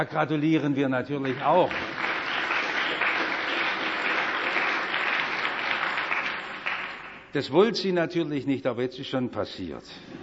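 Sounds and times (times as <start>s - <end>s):
speech: 0.0s - 2.1s, 7.3s - 10.2s
sustained audience applause: 1.2s - 7.3s.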